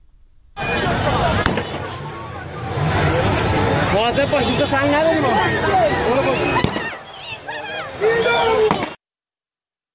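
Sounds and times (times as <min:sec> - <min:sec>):
agitated chatter: 0:00.6 - 0:08.8
crowd shouting at a street protest: 0:00.6 - 0:09.0
gunfire and tear gas launcher shots at a street protest: 0:01.3 - 0:02.0
speech: 0:04.1 - 0:06.6.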